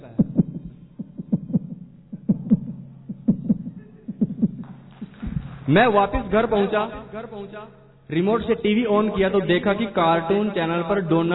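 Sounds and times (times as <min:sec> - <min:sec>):
person's heart pounding heavily: 0:00.0 - 0:07.2
low hum: 0:00.0 - 0:11.3
speech: 0:05.7 - 0:11.3.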